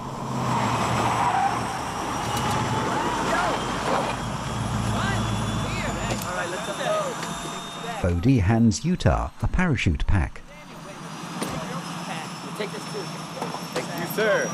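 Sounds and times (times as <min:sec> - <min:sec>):
aircraft drone: 0:00.0 - 0:09.7, 0:10.4 - 0:14.5
4x4 engine rumbling driving toward a plane: 0:00.0 - 0:14.5
speech: 0:08.0 - 0:10.4, 0:14.2 - 0:14.5.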